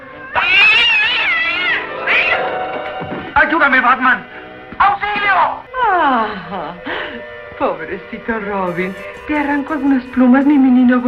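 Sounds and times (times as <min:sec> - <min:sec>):
cat meowing loudly: 0:00.0 - 0:11.0
laughter: 0:00.4 - 0:11.0
speech: 0:03.5 - 0:07.0, 0:07.6 - 0:11.0.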